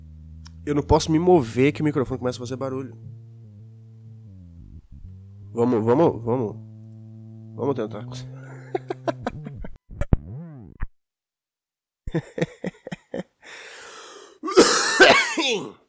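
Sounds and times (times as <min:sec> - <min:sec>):
speech: 0:00.7 - 0:03.2, 0:05.5 - 0:06.7, 0:07.6 - 0:08.3, 0:12.1 - 0:12.6, 0:15.5 - 0:15.8
laughter: 0:08.4 - 0:09.7, 0:12.1 - 0:13.3
smoker's chronic cough: 0:14.4 - 0:15.8.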